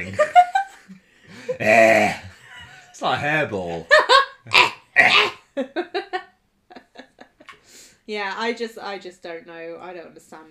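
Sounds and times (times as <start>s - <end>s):
laughter: 0.0s - 4.7s
person imitating a growl: 1.5s - 2.3s, 4.5s - 5.4s
voiced grunts: 1.5s - 2.4s
speech: 1.6s - 1.9s, 3.0s - 4.6s, 8.1s - 10.5s.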